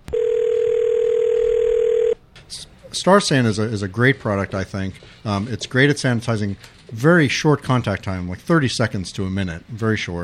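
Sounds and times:
telephone line click: 0.1 - 2.2
speech: 3.0 - 10.2.

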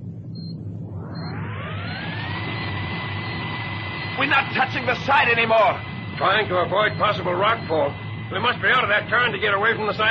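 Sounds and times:
faint beeps: 0.0 - 10.0
vessel engines running full astern: 0.0 - 10.0
speech: 4.2 - 10.0.

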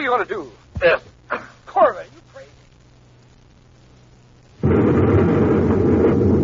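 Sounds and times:
speech: 0.0 - 1.5
space grenade exploding among rocks: 4.6 - 6.4.

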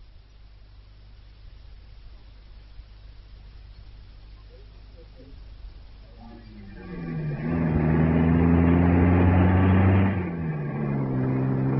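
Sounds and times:
car engine humming as the car drives past: 6.2 - 11.7.

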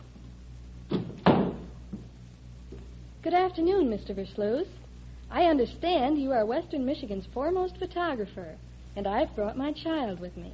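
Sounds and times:
wooden door swinging thunk: 0.9 - 1.7
speech: 3.2 - 10.5.

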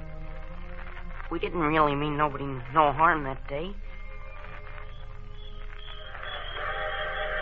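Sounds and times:
speech: 1.3 - 3.8
sustained high steam train whistle: 5.2 - 7.3.

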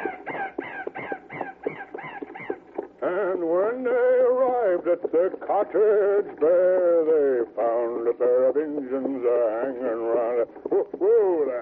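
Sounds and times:
raven cawing: 0.0 - 2.9
speech: 3.0 - 11.6.

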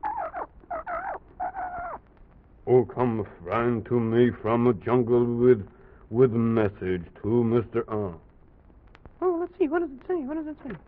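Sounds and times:
bird squawking harshly: 0.0 - 2.0
speech: 2.7 - 8.2, 9.6 - 10.8.

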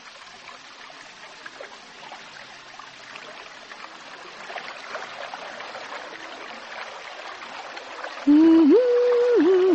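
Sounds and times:
river flowing over pebbles: 0.0 - 9.7
loud sustained wavering tone: 8.3 - 9.7.

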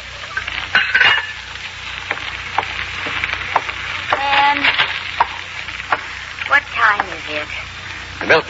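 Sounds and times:
frying food sizzling: 0.0 - 8.4
pots and pans clattering in a kitchen: 0.3 - 6.1
metallic ring: 0.7 - 1.5
speech: 7.3 - 7.7, 8.3 - 8.4.

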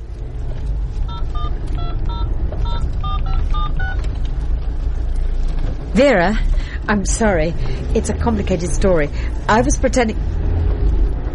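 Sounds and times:
steady low rumble like a car engine: 0.0 - 11.3
mobile phone keypad tones while driving home: 1.1 - 4.1
speech: 6.0 - 10.4.

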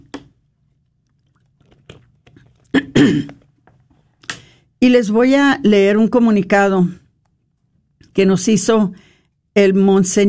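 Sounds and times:
slurp and swallow of water: 0.8 - 3.8
mouth clicks and smacks while sipping water: 0.9 - 3.6
speech: 3.0 - 3.4, 4.8 - 7.0, 8.2 - 10.2.

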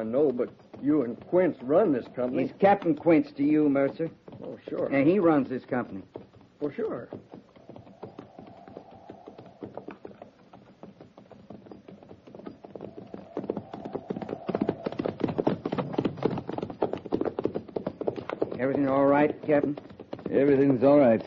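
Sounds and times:
speech: 0.0 - 7.4, 18.7 - 21.2
horses' hooves clip-clopping as a cavalry company rides: 0.0 - 21.2.

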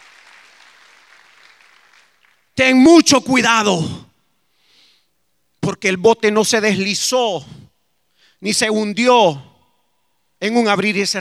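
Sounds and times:
church congregation applauding during a worship service: 0.0 - 2.6
speech: 2.6 - 4.0, 5.7 - 7.6, 8.4 - 9.5, 10.4 - 11.2.

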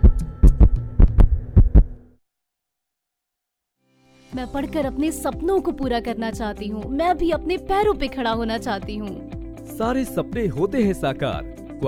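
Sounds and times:
heartbeat sound effect lub-dub thumps: 0.0 - 2.0
speech: 4.4 - 11.8.

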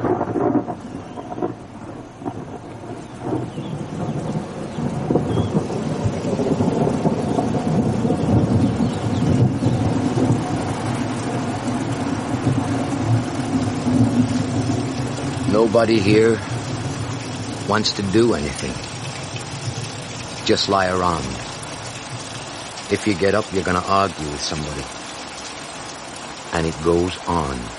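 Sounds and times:
deep thunder rumbling in an electric storm: 0.0 - 25.0
steady heavy rain hissing in an electric storm: 0.0 - 27.7
speech: 15.7 - 16.5, 17.7 - 18.9, 20.5 - 21.4, 22.9 - 25.0, 26.6 - 27.7.

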